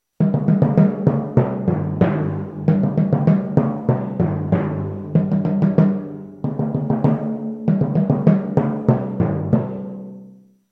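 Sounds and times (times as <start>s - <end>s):
orchestral timpani: 0.2s - 10.4s.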